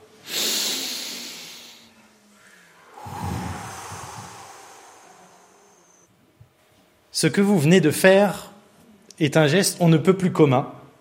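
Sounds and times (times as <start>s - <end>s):
group of people exhaling loudly: 0.2s - 6.1s
group of people inhaling deeply together: 0.2s - 6.1s
speech: 7.2s - 8.5s, 9.2s - 10.8s.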